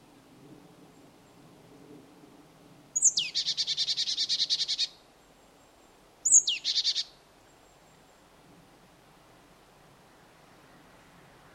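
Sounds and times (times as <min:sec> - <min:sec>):
marsh tit Poecile palustris calling with high sliding note and harsh buzzing notes: 0:03.0 - 0:05.0, 0:06.2 - 0:07.2.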